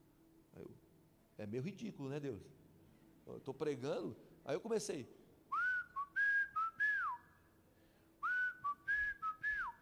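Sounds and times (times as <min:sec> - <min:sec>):
speech: 0:00.6 - 0:02.6, 0:03.2 - 0:05.2
person whistling a short melodic tune: 0:05.5 - 0:07.4, 0:08.2 - 0:09.8.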